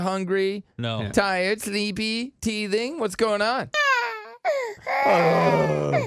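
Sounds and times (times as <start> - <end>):
speech: 0.0 - 3.8, 4.8 - 6.0
baby crying: 3.8 - 6.0.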